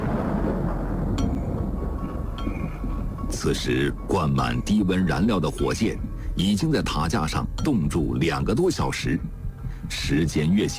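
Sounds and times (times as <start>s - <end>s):
heavy low rumble of thunder: 0.0s - 6.4s
speech: 3.4s - 10.7s.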